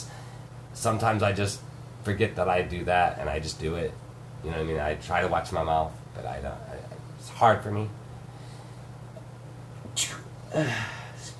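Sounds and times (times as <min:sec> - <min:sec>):
faint steady hum: 0:00.0 - 0:11.3
speech: 0:00.8 - 0:08.0, 0:10.0 - 0:11.0
person sneezing: 0:10.0 - 0:11.3.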